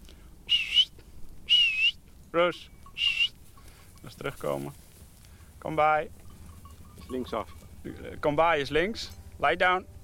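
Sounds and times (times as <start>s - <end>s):
high-pitched herding whistle: 0.5s - 2.0s, 2.8s - 3.4s
speech: 2.3s - 3.2s, 4.0s - 4.8s, 5.6s - 6.2s, 7.1s - 9.9s.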